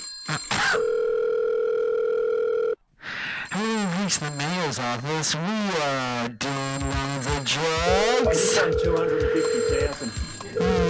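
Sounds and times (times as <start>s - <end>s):
bright electronic telephone ring: 0.2s - 2.8s, 7.6s - 10.8s
speech: 4.1s - 10.8s.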